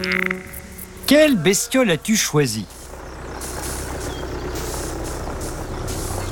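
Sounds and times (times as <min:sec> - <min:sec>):
tractor diesel engine running: 0:00.1 - 0:06.3
speech: 0:01.1 - 0:02.8
bursts of brighter hiss: 0:02.7 - 0:06.3.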